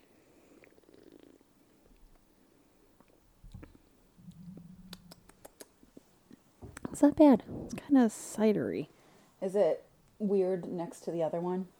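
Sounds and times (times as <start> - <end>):
small sharp wet mouth clicks: 3.0 - 6.0
person sipping and swallowing a drink: 3.1 - 5.6
speech: 7.0 - 11.7.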